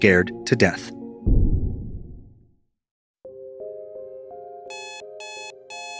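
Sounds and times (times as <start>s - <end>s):
speech: 0.0s - 1.4s
rumble: 1.3s - 2.5s
alarm clock ringing: 4.7s - 5.9s.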